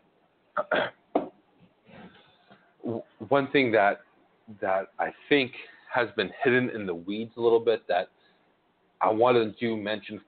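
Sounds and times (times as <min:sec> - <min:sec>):
sharp coughs: 0:00.6 - 0:01.0
soft rasping throat clear: 0:00.6 - 0:01.0, 0:02.8 - 0:03.2
speech: 0:00.6 - 0:01.0, 0:02.9 - 0:08.2, 0:09.0 - 0:10.2.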